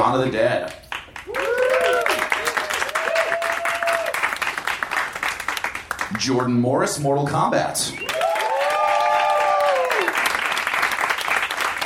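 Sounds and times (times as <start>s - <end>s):
speech: 0.1s - 1.6s, 6.1s - 8.1s
audience applauding to pick a favorite competitor: 0.6s - 6.6s, 8.0s - 11.8s
audience whooping and cheering: 1.3s - 4.4s, 8.0s - 10.4s.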